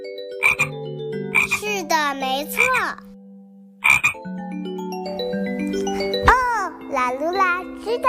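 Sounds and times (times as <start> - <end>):
soft melodic tune: 0.0 - 8.0
small frog croaking loudly: 0.4 - 1.7, 2.4 - 3.2, 3.8 - 4.3.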